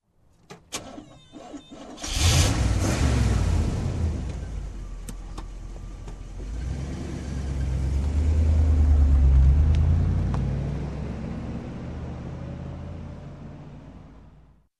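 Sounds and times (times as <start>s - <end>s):
muscle car engine starting: 0.5s - 14.6s.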